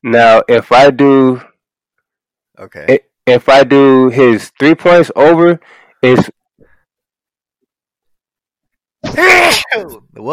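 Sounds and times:
speech: 0.0 - 1.5, 2.6 - 6.4, 9.1 - 10.3
loud sneeze: 9.0 - 9.8.

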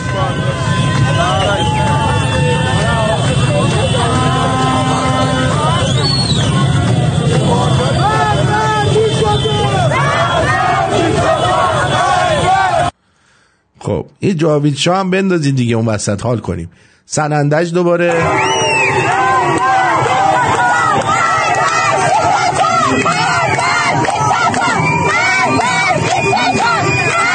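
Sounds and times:
large protest crowd shouting and chanting in an outdoor street: 0.0 - 12.9, 19.0 - 27.3
speech: 14.2 - 18.6.

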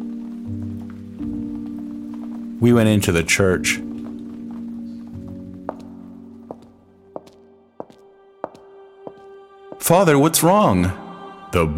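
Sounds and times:
steady rain pattering: 0.0 - 8.0
speech: 2.6 - 3.9, 9.9 - 11.7.

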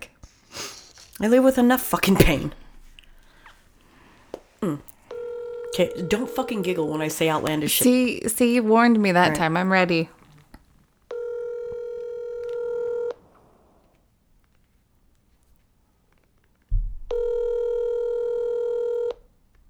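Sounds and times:
speech: 1.2 - 2.6, 5.8 - 10.2
ringback tones on a phone line for an unanswered outgoing call: 5.1 - 8.1, 11.1 - 13.3, 17.1 - 19.3.

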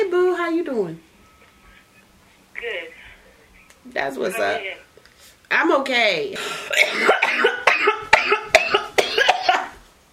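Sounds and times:
speech: 0.6 - 1.1, 3.9 - 4.8, 5.5 - 7.6
coughing fit: 6.6 - 9.8.

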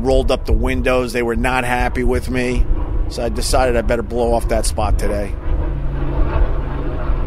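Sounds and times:
speech: 0.0 - 5.4
helicopter circling overhead: 0.0 - 7.2.

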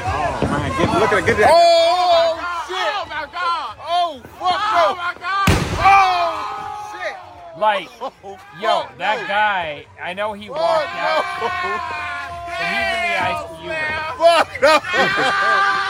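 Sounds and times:
people screaming and shouting: 0.0 - 9.7, 10.4 - 15.8
speech: 0.7 - 2.0, 4.1 - 6.1, 7.6 - 15.8
firework mortar exploding inside a car: 5.4 - 6.4
laughter: 10.8 - 15.8.

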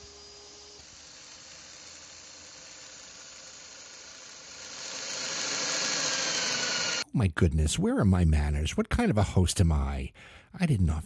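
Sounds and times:
circular saw or router cutting wood: 0.0 - 7.0
speech: 7.2 - 11.0.

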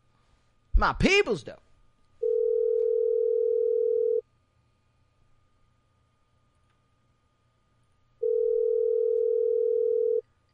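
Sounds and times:
faint low hum: 0.0 - 10.5
speech: 0.8 - 1.7
telephone tone from a call being placed: 2.2 - 4.2, 8.2 - 10.2.

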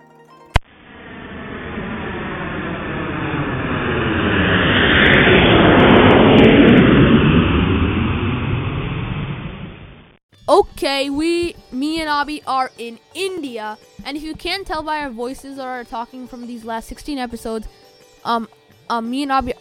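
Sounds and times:
sped-up airplane roar in flight: 0.6 - 10.1
speech: 11.0 - 19.5.

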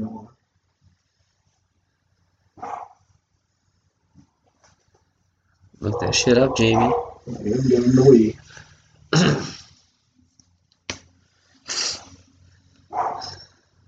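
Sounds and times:
dogs barking: 2.6 - 3.0, 5.8 - 7.5, 12.9 - 13.5
speech: 5.8 - 8.6.

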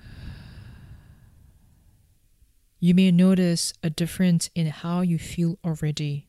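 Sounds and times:
slow breathing in and out during a guided relaxation exercise: 0.0 - 2.2
speech: 2.8 - 6.2.

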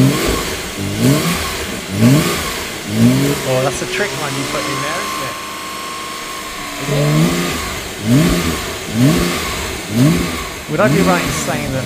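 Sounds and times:
Porsche car engine revving: 0.0 - 11.8
speech: 3.5 - 5.1, 6.8 - 7.4, 8.0 - 8.4, 10.0 - 11.8.

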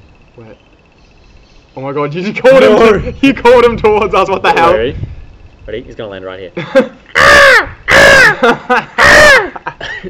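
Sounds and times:
speech: 0.4 - 0.8, 1.8 - 7.7, 8.4 - 10.0
laughter: 6.6 - 7.1, 8.0 - 10.0
crow cawing on a cloudy day: 7.1 - 9.7.

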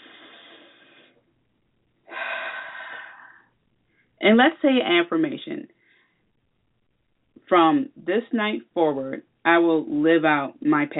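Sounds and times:
deep breathing during a guided relaxation: 0.0 - 1.3, 2.1 - 4.2, 5.8 - 6.3
speech: 4.2 - 5.8, 7.5 - 10.9.

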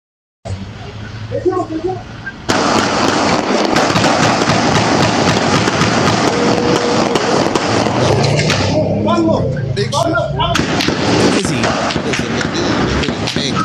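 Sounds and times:
voices shouting: 0.9 - 13.6
dense roaring noise: 2.4 - 13.6
gunfire in a shootout in a city street: 2.5 - 8.8, 10.5 - 13.6.

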